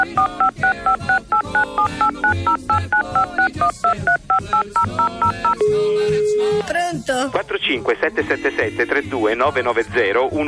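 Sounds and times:
telephone keypad dialing tones: 0:00.0 - 0:05.7
speech: 0:06.6 - 0:10.4.

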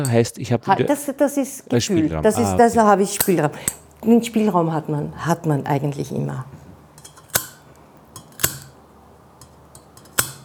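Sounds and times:
speech: 0:00.0 - 0:06.6
soft hiss: 0:00.0 - 0:10.4
scissors cutting flower stems straight across: 0:02.8 - 0:04.6, 0:05.2 - 0:10.4.

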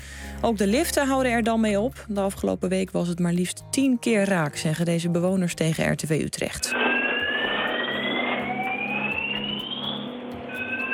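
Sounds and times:
speech: 0:00.4 - 0:06.9
faulty fire alarm high electronic tone in an apartment complex in Utrecht: 0:06.6 - 0:10.9.

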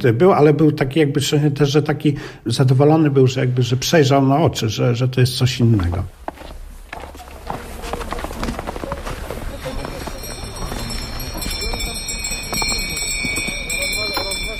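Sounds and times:
speech: 0:00.0 - 0:06.2
busy outdoor noise: 0:00.0 - 0:14.5
horse hooves clip-clopping pulling a sleigh: 0:05.8 - 0:14.5.

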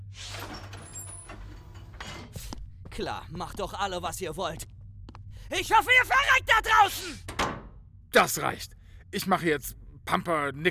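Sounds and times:
door sliding open with a loud pneumatic hiss: 0:00.1 - 0:01.6
speech: 0:03.0 - 0:04.8, 0:05.5 - 0:07.3, 0:08.1 - 0:10.7.

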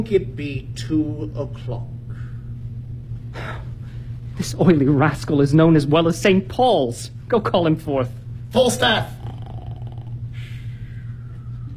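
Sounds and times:
speech: 0:00.0 - 0:02.0, 0:04.4 - 0:09.4
low steady hum: 0:00.0 - 0:11.7
man snorting loudly in his sleep: 0:09.2 - 0:10.7.

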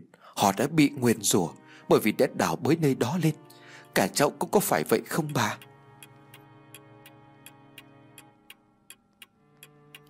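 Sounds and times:
speech: 0:00.4 - 0:05.7
soft sustained musical drone: 0:00.6 - 0:10.0
clock ticking in a room: 0:03.2 - 0:10.0.

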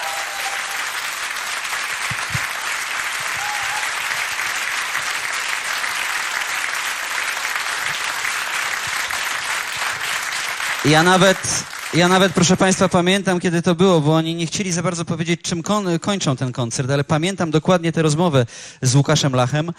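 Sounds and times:
audience applause after a band's concert: 0:00.0 - 0:12.8
speech: 0:10.8 - 0:19.7.

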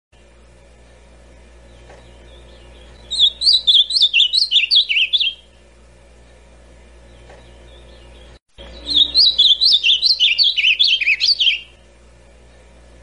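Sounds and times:
low steady hum: 0:00.2 - 0:13.0
ultramarine grosbeak singing classic whistled song: 0:01.7 - 0:05.5, 0:07.0 - 0:11.8.

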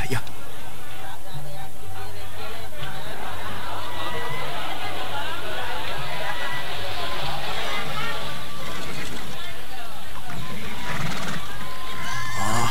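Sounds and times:
crowd chatter at a horse market: 0:00.0 - 0:12.6
laughter: 0:00.0 - 0:12.6
people talking: 0:00.0 - 0:12.6
horses neighing at a market where horses are traded: 0:10.3 - 0:12.6.

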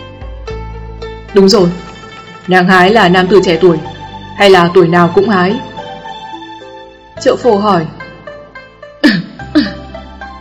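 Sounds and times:
speech: 0:01.3 - 0:05.7, 0:07.2 - 0:08.0
dry cough: 0:09.0 - 0:09.9.

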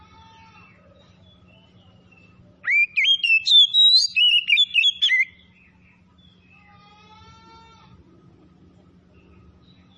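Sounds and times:
quiet low hum: 0:00.0 - 0:09.9
Oriental magpie-robin singing in full song: 0:01.2 - 0:06.6.

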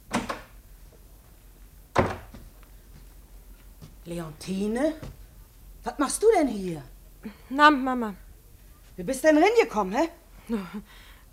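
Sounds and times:
dull wooden clunks of a door being opened in a house: 0:00.0 - 0:00.6, 0:01.9 - 0:02.6
speech: 0:04.1 - 0:05.2, 0:05.8 - 0:08.2, 0:09.0 - 0:11.1.

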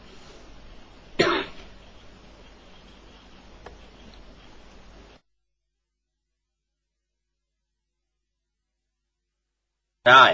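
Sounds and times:
low steady hiss: 0:00.0 - 0:05.3, 0:06.0 - 0:10.3
harsh cough: 0:01.2 - 0:01.7.

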